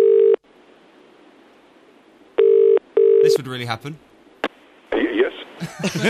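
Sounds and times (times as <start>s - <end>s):
telephone ringing tone: 0.0s - 0.4s, 2.4s - 3.4s
speech: 3.5s - 4.1s, 5.6s - 6.0s
laughter: 5.6s - 6.0s.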